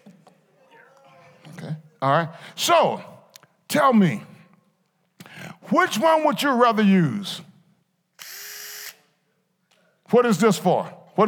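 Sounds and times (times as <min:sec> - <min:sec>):
speech: 0:02.0 - 0:03.1, 0:03.7 - 0:04.3, 0:05.7 - 0:07.5, 0:10.1 - 0:11.2
power drill whirring: 0:08.2 - 0:09.1.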